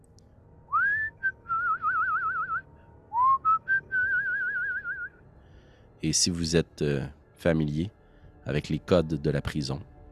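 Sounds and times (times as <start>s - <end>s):
person whistling a slow wavering tune: 0.7s - 5.2s
speech: 6.0s - 9.9s.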